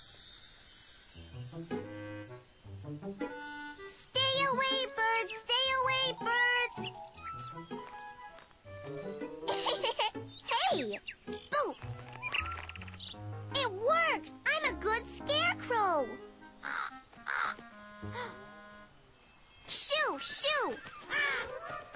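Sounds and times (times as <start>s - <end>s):
low steady tones: 0.0s - 21.0s
large bird cawing: 16.6s - 17.6s, 21.0s - 21.6s.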